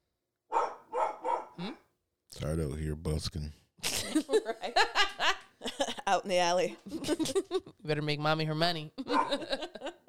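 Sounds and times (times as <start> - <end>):
dog barking: 0.5 - 1.6, 9.1 - 9.4
speech: 2.4 - 4.8, 6.2 - 9.6.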